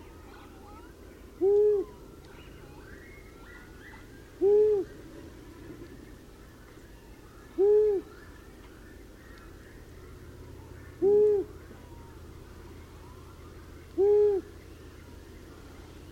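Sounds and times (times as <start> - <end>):
long-eared owl hooting: 0.8 - 5.2, 6.8 - 15.6.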